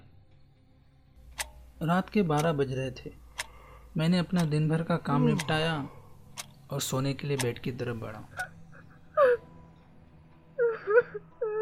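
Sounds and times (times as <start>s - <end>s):
speech: 1.8s - 3.2s, 4.0s - 6.0s, 6.7s - 8.6s
girl crying and wailing: 8.3s - 9.5s, 10.6s - 11.6s.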